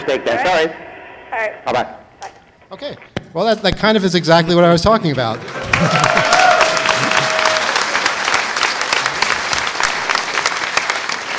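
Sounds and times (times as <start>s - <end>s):
speech: 0.0s - 2.0s, 2.7s - 6.2s
studio audience applause: 5.1s - 11.3s.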